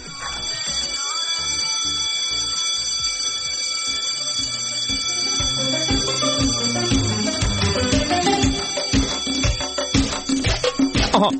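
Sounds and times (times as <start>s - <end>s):
school break bell ringing: 0.0s - 11.3s
low rhythmic thumps: 3.0s - 11.3s.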